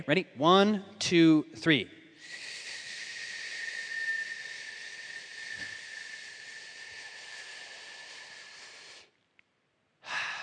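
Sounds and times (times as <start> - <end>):
speech: 0.0 - 2.4
someone slowly inhaling through pursed lips: 2.2 - 9.2.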